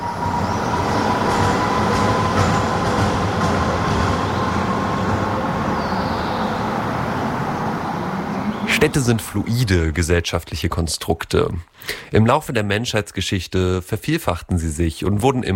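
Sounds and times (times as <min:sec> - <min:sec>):
tram wheel metallic squeal rounding a curve: 0:00.0 - 0:09.3
tram in Halle, Germany rumbling along its rails: 0:00.0 - 0:11.6
speech: 0:08.8 - 0:15.5.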